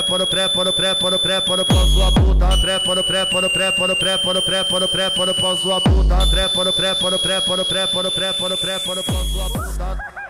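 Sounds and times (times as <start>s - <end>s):
thin high whine: 0.0s - 10.0s
distorted buzzing pulsing electronic tones of a funk twin hallucination effect: 0.0s - 10.2s
speech: 0.1s - 10.2s.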